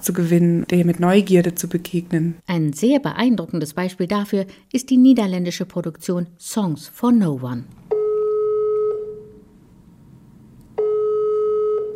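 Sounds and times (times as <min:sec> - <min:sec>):
speech: 0:00.0 - 0:07.8
telephone ringing tone over the line in Iran: 0:07.9 - 0:09.4, 0:10.8 - 0:11.9.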